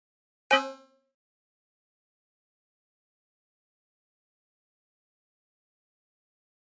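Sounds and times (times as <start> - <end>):
low-pitched flash beep: 0.5 - 1.0.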